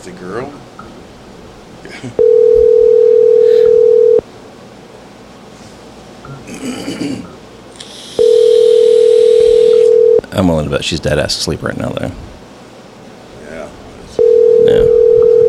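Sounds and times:
speech: 0.0 - 0.8, 1.9 - 2.6, 10.4 - 12.3
phone ringback tone: 2.2 - 4.2, 8.2 - 10.2, 14.2 - 15.4.

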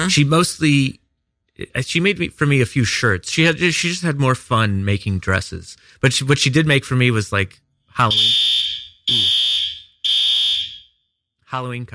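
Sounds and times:
speech: 0.0 - 1.0, 1.6 - 8.5, 9.1 - 9.5, 11.5 - 11.9
shrill fire alarm beeping: 8.0 - 11.0.

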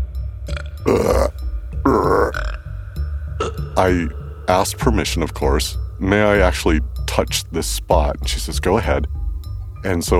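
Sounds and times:
loud deep gurgling burps: 0.5 - 2.8, 3.4 - 3.9
speech: 3.8 - 9.2, 9.8 - 10.1.

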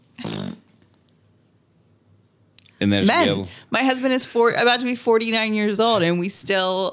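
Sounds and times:
loud buzzy fart sound: 0.1 - 0.9
speech: 2.8 - 6.9.

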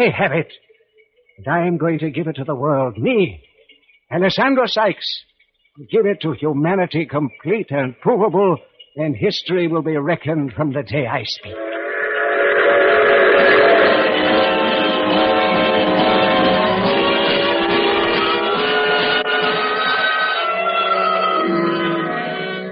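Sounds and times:
speech: 0.0 - 0.7, 1.4 - 3.5, 4.1 - 11.7
train rolling along the rails: 11.5 - 18.5
train whistle: 11.5 - 22.6.

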